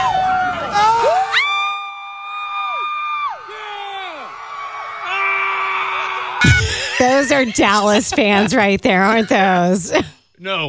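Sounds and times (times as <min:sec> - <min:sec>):
crowd at a scream club gathering screaming and cheering together: 0:00.0 - 0:07.9
laughter: 0:06.0 - 0:10.1
speech: 0:07.2 - 0:10.6.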